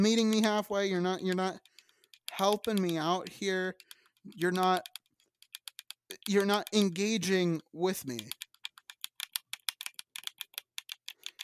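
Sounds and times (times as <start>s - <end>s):
speech: 0.0s - 1.7s, 2.4s - 5.0s, 6.2s - 8.4s
sharp crisp clicks: 0.0s - 11.4s.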